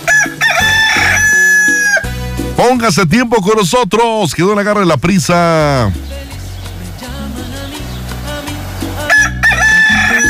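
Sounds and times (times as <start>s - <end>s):
rooster crowing: 0.0s - 2.1s, 9.0s - 10.2s
speech: 2.6s - 6.2s.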